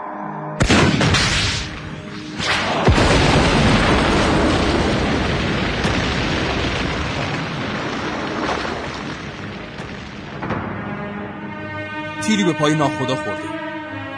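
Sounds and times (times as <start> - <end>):
helicopter exploding after RPG hit: 0.6 - 11.0
speech: 12.3 - 13.6.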